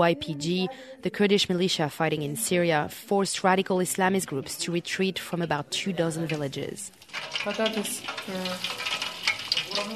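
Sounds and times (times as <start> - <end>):
speech: 0.0 - 8.9, 9.8 - 9.9
french fries crackling and sizzling in a pan of hot oil: 6.1 - 9.9.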